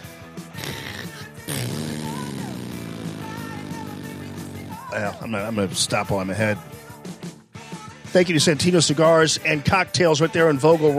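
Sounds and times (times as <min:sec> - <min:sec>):
voice imitating a droning fantasy blimp engine: 0:00.6 - 0:05.2
speech: 0:04.9 - 0:06.8, 0:08.1 - 0:10.9.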